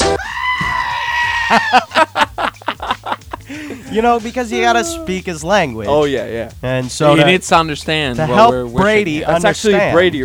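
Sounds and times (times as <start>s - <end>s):
goat screaming and bleating: 0.0s - 1.9s, 3.8s - 5.3s
laughter: 1.2s - 5.3s
speech: 1.5s - 2.1s, 3.9s - 10.2s.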